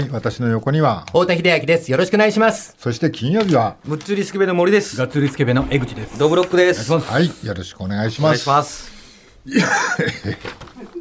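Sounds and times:
speech: 0:00.0 - 0:10.7
person coughing and choking: 0:09.5 - 0:11.0.

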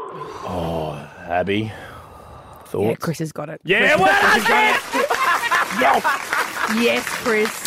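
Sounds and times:
deep breath taken as a breathwork demonstration: 0:00.1 - 0:02.8
speech: 0:01.4 - 0:01.8, 0:02.7 - 0:05.0, 0:05.7 - 0:07.6
laughter: 0:03.9 - 0:07.2.

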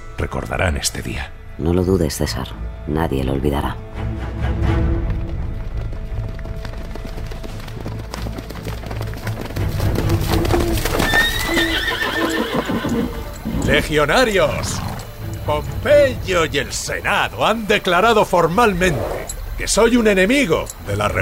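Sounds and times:
speech: 0:00.2 - 0:04.0, 0:13.7 - 0:21.2
busy outdoor noise: 0:01.4 - 0:21.2
horse hooves clopping: 0:04.3 - 0:21.2
horse neighing: 0:10.4 - 0:15.4, 0:18.8 - 0:19.4.

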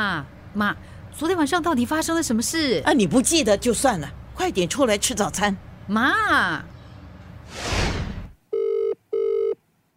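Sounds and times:
speech: 0:00.0 - 0:06.7
rushing whoosh of noise: 0:07.4 - 0:08.4
telephone ringing in short electronic bursts: 0:08.5 - 0:09.6.

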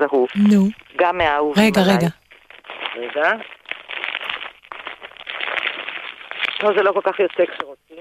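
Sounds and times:
speech: 0:00.0 - 0:02.2, 0:03.0 - 0:03.5, 0:06.6 - 0:08.0
bubble wrap popping and crackling: 0:01.8 - 0:07.8.

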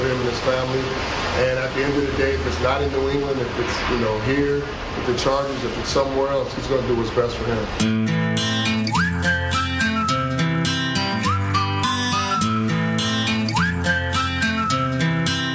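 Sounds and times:
speech: 0:00.2 - 0:08.6
full pop backing track with loud steady beat: 0:07.8 - 0:15.5
bright whistled melody from a pop song: 0:08.5 - 0:15.5.

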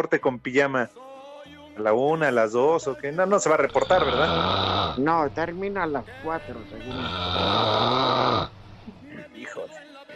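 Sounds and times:
speech: 0:00.0 - 0:08.6
person imitating a loud rasping snore: 0:03.5 - 0:05.2, 0:06.8 - 0:08.5.

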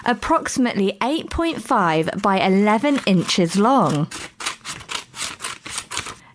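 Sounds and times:
speech: 0:00.0 - 0:04.4
scissors cutting a rectangular piece of paper: 0:02.2 - 0:06.2.

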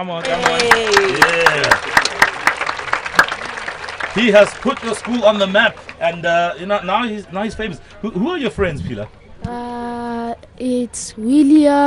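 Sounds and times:
speech: 0:00.0 - 0:02.0, 0:04.2 - 0:09.6, 0:10.6 - 0:11.8
audience applause with steady rhythmic clapping: 0:00.0 - 0:07.0.

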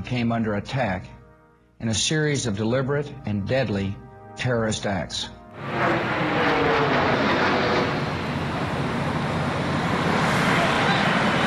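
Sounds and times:
speech: 0:00.0 - 0:01.2, 0:01.8 - 0:07.2
very large plane roaring low directly over a building: 0:05.4 - 0:11.4.

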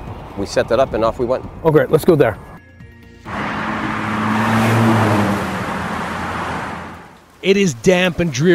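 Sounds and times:
rushing road noise: 0:00.0 - 0:08.5
speech: 0:00.4 - 0:02.5, 0:07.4 - 0:08.5
car engine starting: 0:03.3 - 0:07.3.

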